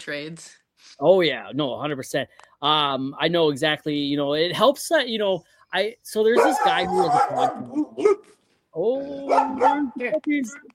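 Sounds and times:
speech: 0.0 - 10.7
dog barking and yelping: 6.3 - 8.4, 9.2 - 10.0.

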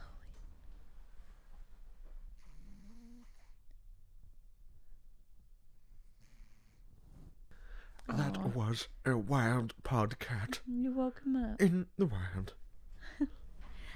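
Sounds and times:
cat snoring softly: 2.4 - 3.7, 6.1 - 7.3
speech: 8.5 - 13.4.

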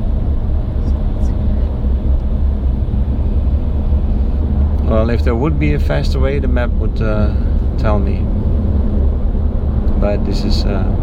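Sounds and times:
road noise inside a car driving in Miami: 0.0 - 11.0
speech: 5.0 - 8.4, 10.0 - 11.0.

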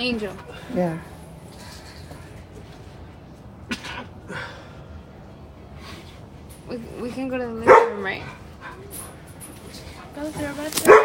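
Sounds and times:
speech: 0.0 - 1.1, 6.7 - 9.0, 9.7 - 11.0
faint noise: 0.0 - 11.0.

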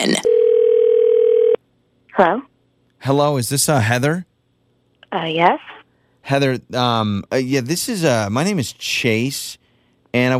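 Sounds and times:
telephone ringback tone: 0.2 - 1.6
speech: 2.2 - 4.3, 5.1 - 10.3.

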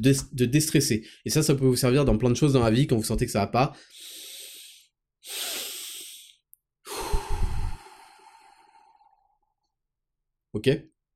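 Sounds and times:
speech: 0.0 - 4.1, 5.2 - 5.6, 10.6 - 10.9
slow relaxation breathing in through the nose and out through the mouth: 3.8 - 9.7.

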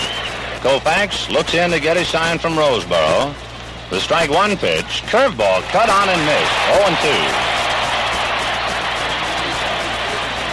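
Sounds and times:
huge baseball stadium crowd at a night game screaming and roaring: 0.0 - 0.8, 5.6 - 10.5
speech: 0.6 - 7.5.

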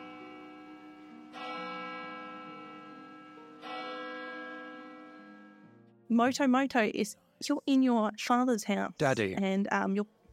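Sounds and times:
deep church bell tower tolling: 0.0 - 5.7
speech: 6.1 - 10.2.

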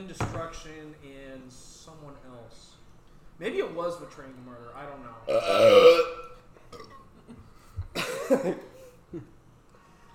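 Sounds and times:
speech: 0.0 - 2.8, 3.4 - 7.4, 8.3 - 9.4
loud drawn-out burp: 5.3 - 7.0.

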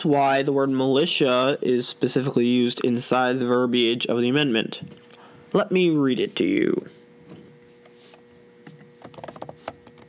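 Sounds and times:
speech: 0.0 - 7.0
low steady hum: 0.0 - 10.0
typing on a computer keyboard: 9.0 - 10.0.

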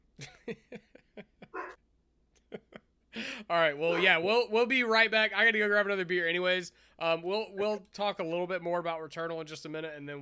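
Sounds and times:
speech: 0.5 - 0.8, 3.5 - 10.2
several dogs barking: 1.5 - 1.8.

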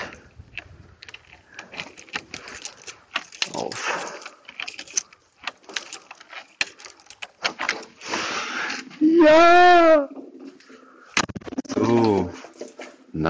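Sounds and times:
handling noises: 0.0 - 9.0, 10.1 - 13.2
key turning in the lock of an apartment building door: 0.5 - 8.0.

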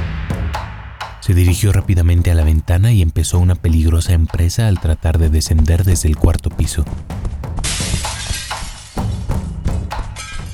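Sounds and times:
speech: 1.2 - 7.3
heavy thuds: 1.2 - 10.5
glass shards tinkling and scattering: 7.6 - 9.3, 10.2 - 10.5
glass panes shattering: 7.6 - 10.5.

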